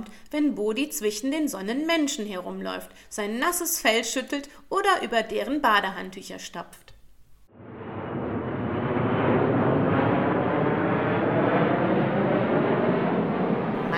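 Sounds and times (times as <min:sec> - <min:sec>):
speech: 0:00.1 - 0:06.9
airplane roaring as it passes overhead: 0:07.6 - 0:13.9.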